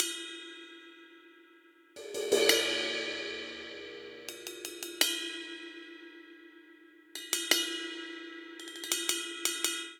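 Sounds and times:
straight seven rock cymbals: 2.0s - 9.4s.

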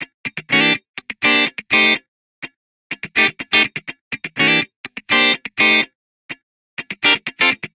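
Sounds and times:
funk guitar in C major: 0.0s - 2.0s, 2.9s - 5.9s, 6.8s - 7.7s.

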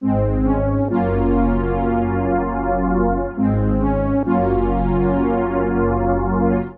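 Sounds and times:
1980s-style soundtrack music loop in A-flat at 106 bpm: 0.0s - 6.7s.

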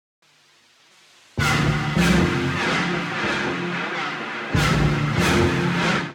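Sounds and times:
synth pads in A sharp minor at 150 bpm: 1.4s - 6.1s.

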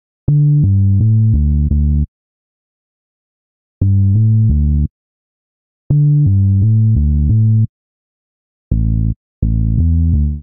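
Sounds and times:
bassline in D minor: 0.3s - 2.1s, 3.8s - 4.9s, 5.9s - 7.7s, 8.7s - 10.4s.

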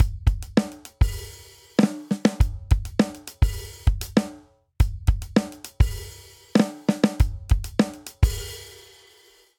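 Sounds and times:
funk drum outro at 100 bpm in 4 4: 0.0s - 9.4s.

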